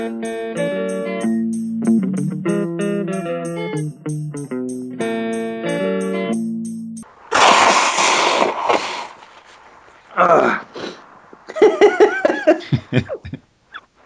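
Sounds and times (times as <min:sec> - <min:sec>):
short musical passage: 0:00.0 - 0:07.0
person blowing nose: 0:07.3 - 0:09.5
laughter: 0:11.5 - 0:13.4.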